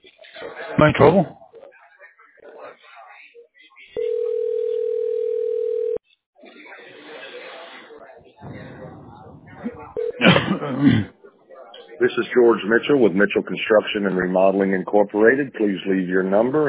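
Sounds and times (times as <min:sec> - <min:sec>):
speech: 0:00.4 - 0:01.4, 0:12.2 - 0:16.6
phone line dialing out on a call: 0:04.0 - 0:06.0.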